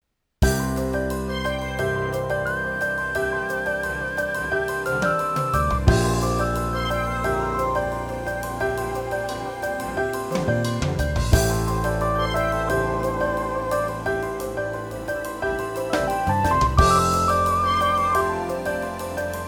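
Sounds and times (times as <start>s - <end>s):
RD 700SX synthesizer sound: 0.8s - 19.4s.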